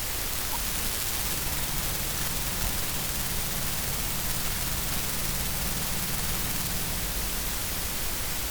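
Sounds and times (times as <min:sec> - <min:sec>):
motor noise: 0:00.2 - 0:08.4.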